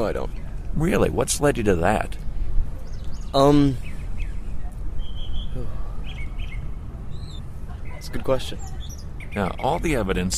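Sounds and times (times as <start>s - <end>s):
speech: 0.0s - 2.2s, 3.3s - 3.9s, 5.6s - 5.8s, 8.0s - 10.3s
birds chirping and tweeting: 0.0s - 10.3s
steady outdoor background noise: 0.0s - 10.3s.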